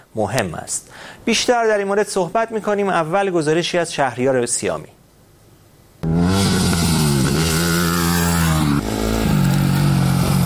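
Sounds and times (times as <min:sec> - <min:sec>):
speech: 0:00.2 - 0:05.0
motorcycle engine starting up and revving: 0:06.0 - 0:10.4.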